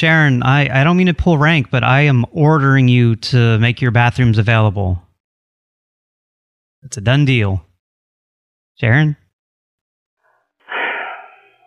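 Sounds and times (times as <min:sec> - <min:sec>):
speech: 0:00.0 - 0:05.0, 0:06.8 - 0:07.7, 0:08.8 - 0:09.2
heavy breath out like a long audible sigh: 0:10.7 - 0:11.6.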